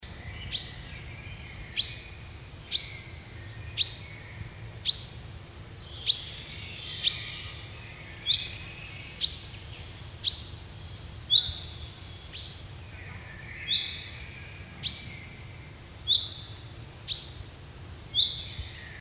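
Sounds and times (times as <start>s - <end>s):
common chaffinch singing: 0.1s - 18.9s.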